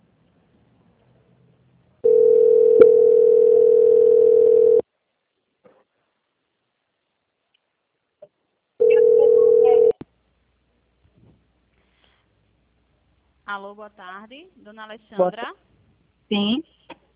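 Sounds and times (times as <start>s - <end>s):
telephone line tone while a bank call is transferred and dialed: 2.0s - 4.8s, 8.8s - 10.0s
speech: 13.6s - 15.7s, 16.3s - 16.7s.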